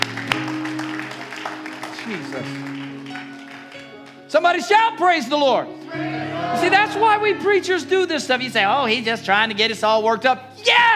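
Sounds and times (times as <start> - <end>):
crowd clapping in a large room: 0.0 - 4.7
speech: 2.1 - 2.8, 4.3 - 10.9.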